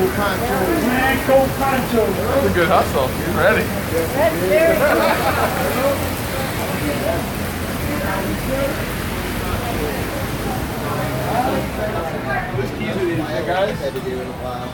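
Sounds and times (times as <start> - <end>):
faint voices murmuring indistinctly: 0.0 - 14.7
steady rain falling outdoors: 0.0 - 14.7
speech: 0.2 - 6.2, 6.8 - 7.4, 8.0 - 9.0, 11.0 - 14.7
laughter: 4.0 - 6.4.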